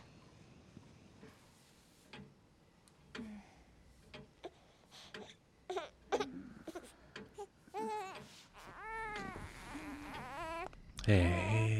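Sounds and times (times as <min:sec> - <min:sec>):
baby crying: 0:05.7 - 0:11.7.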